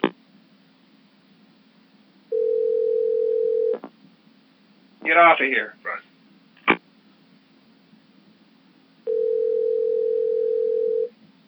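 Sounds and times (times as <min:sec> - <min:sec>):
quiet telephone line hiss: 0:02.3 - 0:03.8, 0:09.1 - 0:11.1
speech: 0:05.1 - 0:05.8.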